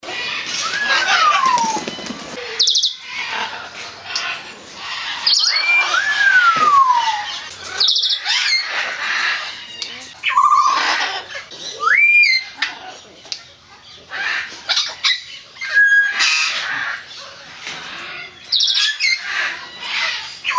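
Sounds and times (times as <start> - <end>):
African Grey Parrot calls: 0.0 - 20.5.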